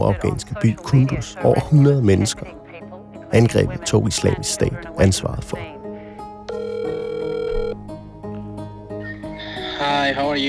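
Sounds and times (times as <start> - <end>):
speech: 0.0 - 2.6, 3.3 - 5.8, 10.1 - 10.4
telephone dial tone while placing a call: 6.5 - 7.8.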